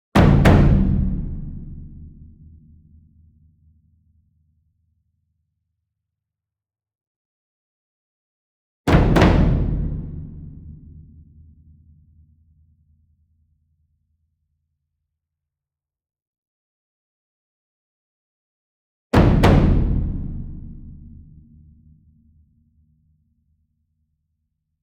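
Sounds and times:
medium double concert bass drum: 0.2s - 2.4s, 8.9s - 10.9s, 19.2s - 21.2s.

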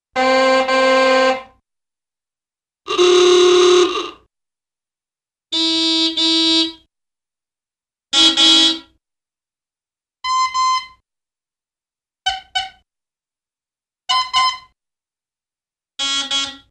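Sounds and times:
various old cartoon car horns: 0.2s - 1.6s, 2.9s - 4.2s, 5.6s - 6.9s, 8.2s - 8.9s, 12.3s - 12.8s, 14.1s - 14.8s, 16.0s - 16.6s.

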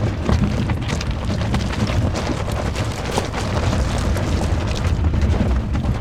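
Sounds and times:
car tires on rocks and dirt: 0.0s - 5.9s.

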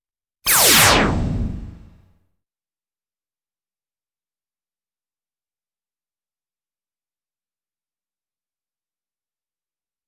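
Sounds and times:
laser effect: 0.5s - 2.0s.

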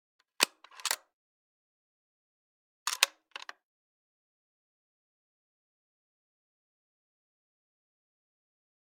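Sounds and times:
.223 rifle action being worked: 0.4s - 1.0s, 2.9s - 3.5s.

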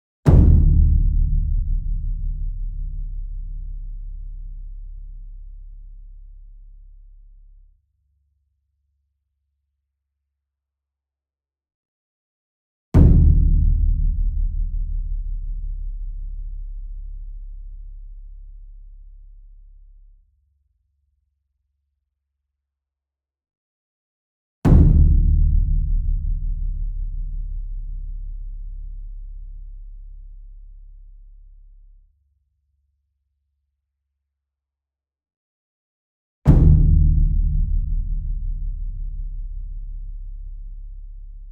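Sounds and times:
ensemble concert bass drum and taiko hit: 0.3s - 3.4s, 13.0s - 15.0s, 24.7s - 27.1s, 36.5s - 40.0s.

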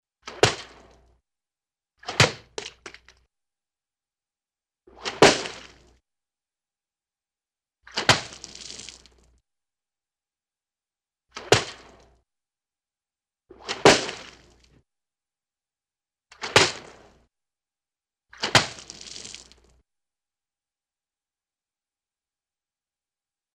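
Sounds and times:
wet liquidy cartoon impacts: 2.0s - 3.2s, 4.9s - 6.0s, 7.9s - 9.3s, 11.4s - 12.1s, 13.5s - 14.6s, 18.3s - 19.8s.

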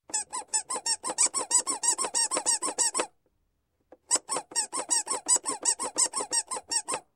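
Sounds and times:
squeeze toy squeaking: 0.1s - 3.2s, 4.0s - 7.1s.

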